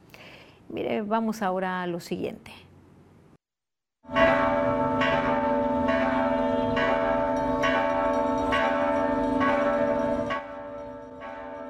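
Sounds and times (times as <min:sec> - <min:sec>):
speech: 0:00.7 - 0:02.6
church bells ringing: 0:04.1 - 0:11.6.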